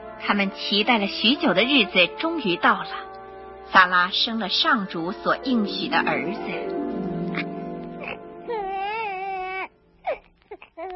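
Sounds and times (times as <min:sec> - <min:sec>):
speech: 0:00.2 - 0:03.1, 0:03.7 - 0:06.8
newborn baby crying loudly: 0:07.4 - 0:10.9.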